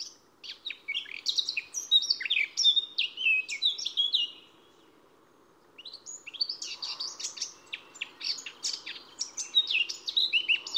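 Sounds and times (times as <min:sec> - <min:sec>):
Eurasian blackcap singing: 0:00.0 - 0:04.5, 0:05.8 - 0:10.7.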